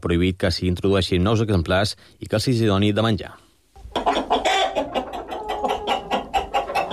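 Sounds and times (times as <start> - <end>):
speech: 0.0 - 3.4
flock of chickens clucking: 3.8 - 6.9.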